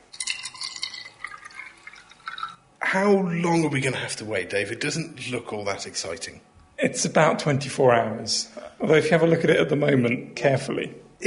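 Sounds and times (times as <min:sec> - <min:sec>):
white vinegar poured onto a free-range egg in a jar: 0:00.0 - 0:02.8
speech: 0:02.9 - 0:11.2.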